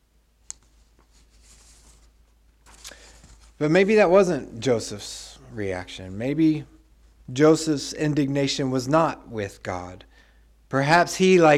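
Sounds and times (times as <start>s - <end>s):
light scratchy paper handling sounds: 0.5s - 3.6s
paper rustling as a caught page is freed: 0.6s - 3.6s
speech: 3.6s - 10.1s, 10.7s - 11.5s.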